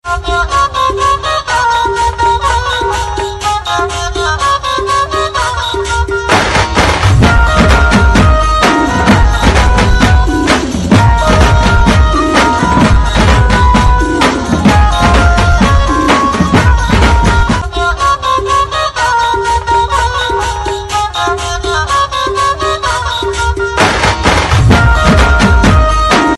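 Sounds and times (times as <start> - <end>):
instrumental music: 0.0 - 26.3.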